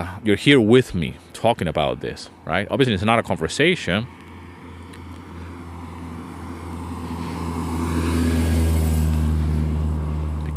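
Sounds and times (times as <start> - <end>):
speech: 0.0 - 4.2
car passing by outside: 4.0 - 10.5.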